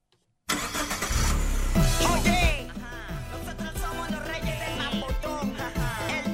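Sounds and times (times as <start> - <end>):
car engine cranking and starting with key turn: 0.5 - 6.2.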